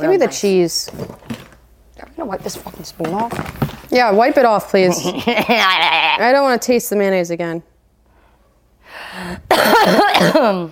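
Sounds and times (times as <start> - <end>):
speech: 0.0 - 1.4, 2.2 - 7.7, 9.3 - 10.7
raspy breathy rasp: 8.1 - 9.5
person coughing harshly: 9.5 - 10.7.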